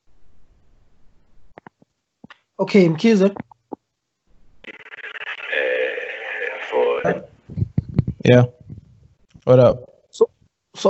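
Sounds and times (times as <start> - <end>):
speech: 2.6 - 3.4, 8.3 - 8.6, 9.5 - 10.8
tinny voice over a lagging phone call line: 4.6 - 8.8.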